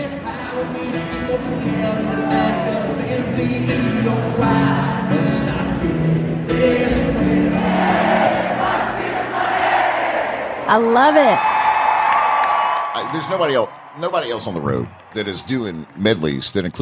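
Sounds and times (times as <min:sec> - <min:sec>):
large concert crowd singing along: 0:00.0 - 0:10.7
speech: 0:00.6 - 0:05.1, 0:10.7 - 0:11.5, 0:13.0 - 0:16.8
concert crowd cheering: 0:01.6 - 0:03.4, 0:07.3 - 0:16.8.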